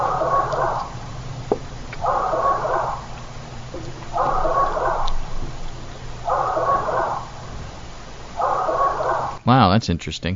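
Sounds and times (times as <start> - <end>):
curious small-dog-like hoarse bark: 0.0 - 1.0, 2.0 - 3.2, 4.1 - 5.3, 6.2 - 7.4, 8.4 - 9.4
low hum: 0.0 - 10.3
speech: 9.5 - 10.3.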